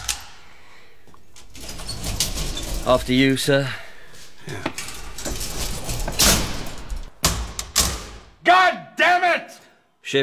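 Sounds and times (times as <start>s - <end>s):
key clicking in the lock of a service lift: 0.0s - 8.2s
mechanical sliding lift door rumbling open: 0.0s - 8.4s
speech: 2.9s - 3.8s, 4.5s - 4.8s.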